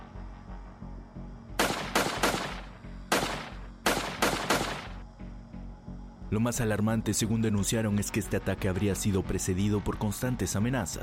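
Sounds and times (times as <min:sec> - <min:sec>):
gunshots fired at a house at night: 0:01.6 - 0:05.0
speech: 0:06.3 - 0:11.0.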